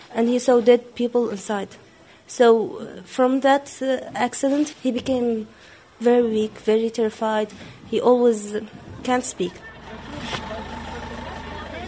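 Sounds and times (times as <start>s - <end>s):
street noise: 0.0s - 11.8s
speech: 0.1s - 10.7s
engines of two small buses pulling out into the street: 3.8s - 11.8s
murmur of voices: 8.5s - 11.8s.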